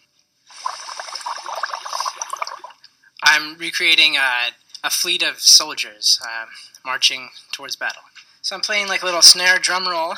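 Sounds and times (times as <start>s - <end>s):
air blown through a straw into a glass of water bubbling: 0.5s - 2.8s
speech: 3.4s - 10.1s.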